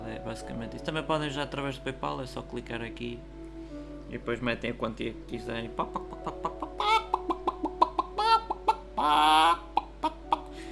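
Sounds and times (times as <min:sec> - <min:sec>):
speech: 0:00.1 - 0:03.4, 0:04.1 - 0:06.5, 0:09.0 - 0:09.6
chicken clucking and squawking: 0:06.0 - 0:10.5.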